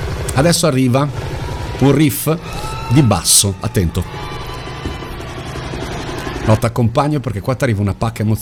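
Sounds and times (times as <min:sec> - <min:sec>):
helicopter rotor chopping sound effect in a music track: 0:00.0 - 0:08.4
speech: 0:00.4 - 0:04.4, 0:06.4 - 0:08.4.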